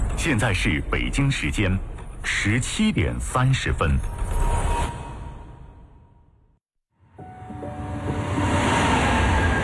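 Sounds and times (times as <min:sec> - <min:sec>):
speech: 0:00.2 - 0:04.4
subway train roaring past in the city: 0:07.3 - 0:09.6.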